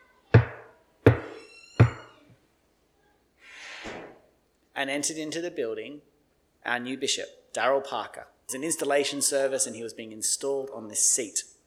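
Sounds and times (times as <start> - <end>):
heavy knocks on a large wooden church door at a bishop's installation service: 0.4 - 2.1
speech: 4.8 - 11.6.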